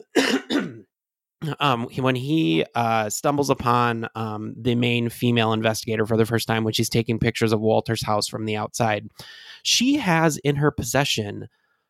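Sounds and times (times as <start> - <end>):
throat clearing: 0.0 - 0.9
speech: 1.4 - 11.6.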